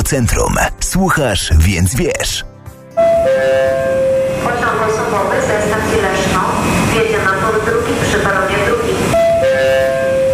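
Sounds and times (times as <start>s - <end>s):
speech: 0.1s - 2.5s, 4.5s - 8.5s
train passing with roar and clattering rumble: 3.0s - 10.3s.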